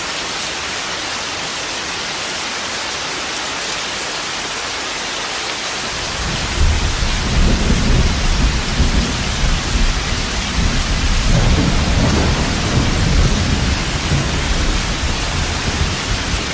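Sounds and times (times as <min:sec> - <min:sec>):
steady dense rain hissing at night: 0:00.0 - 0:16.5
deep rolling thunder at night: 0:06.2 - 0:16.5.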